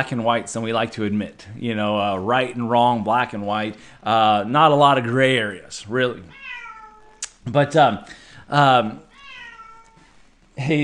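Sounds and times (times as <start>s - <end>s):
speech: 0.0s - 6.4s, 7.4s - 9.1s, 10.6s - 10.8s
house cat meowing: 6.3s - 7.2s, 9.0s - 10.0s.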